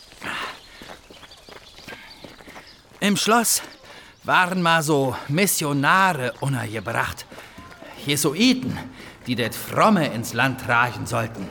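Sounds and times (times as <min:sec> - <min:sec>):
footsteps walking through a gate up to a castle ruin: 0:00.0 - 0:03.8, 0:06.3 - 0:11.4
speech: 0:03.0 - 0:07.3, 0:08.0 - 0:11.4.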